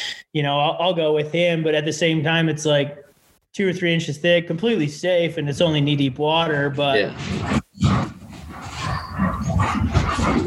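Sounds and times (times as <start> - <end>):
speech: 0.3 - 7.6
dogs growling while being let into a house: 7.4 - 10.4.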